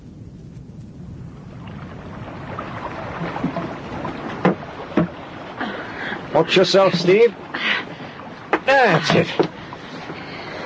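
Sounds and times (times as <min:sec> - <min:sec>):
boat moving through water: 0:00.0 - 0:10.6
sharp knocks or splashes: 0:01.6 - 0:07.4, 0:08.2 - 0:10.2
speech: 0:06.3 - 0:07.7, 0:08.7 - 0:09.4.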